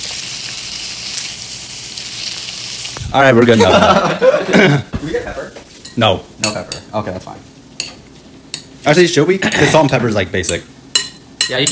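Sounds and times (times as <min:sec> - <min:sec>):
bacon rendering down in a pan: 0:00.0 - 0:03.6
speech: 0:03.1 - 0:07.5, 0:08.8 - 0:10.7, 0:11.5 - 0:11.6
laughter: 0:03.4 - 0:05.0.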